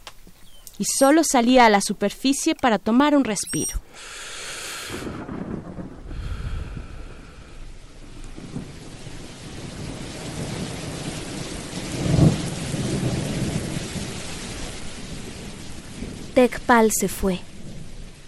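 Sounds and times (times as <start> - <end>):
speech: 0.8 - 4.2, 16.4 - 17.5
heavy rain pouring in a thunderstorm: 3.9 - 18.2
low rolling thunder: 4.8 - 16.7, 17.4 - 18.2.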